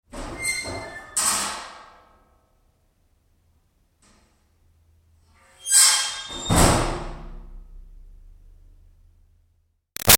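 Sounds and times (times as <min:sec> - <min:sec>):
metal milking vat door screeching open and closed: 0:00.3 - 0:01.8, 0:05.5 - 0:06.9.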